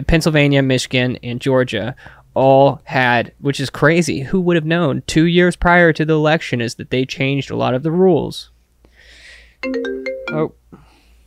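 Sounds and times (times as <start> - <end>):
speech: 0.0 - 8.5, 9.6 - 10.6
faint hiss: 0.0 - 11.2
electronic phone ringtone for an incoming call: 9.6 - 10.6.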